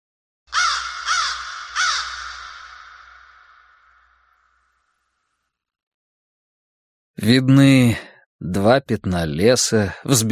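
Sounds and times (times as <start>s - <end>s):
crows giving loud harsh caws: 0.5s - 5.3s
speech: 7.2s - 10.3s.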